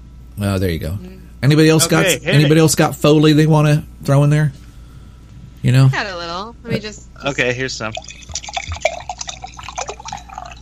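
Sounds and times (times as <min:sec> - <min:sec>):
speech: 0:00.4 - 0:04.6, 0:05.6 - 0:08.4
wine pouring into a glass: 0:07.8 - 0:10.5.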